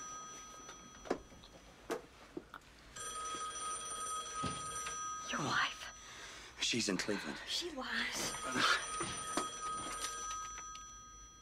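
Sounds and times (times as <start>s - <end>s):
telephone bell ringing with shrill metallic trill: 0.0s - 1.9s, 2.9s - 6.4s, 8.2s - 11.4s
speech: 6.7s - 9.2s.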